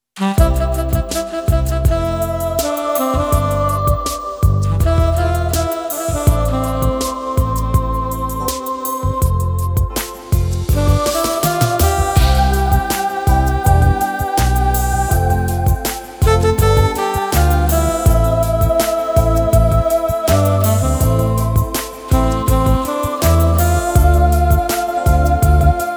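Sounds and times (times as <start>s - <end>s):
analog ballad in Yamaha PSR-550 style: 0.2s - 25.9s.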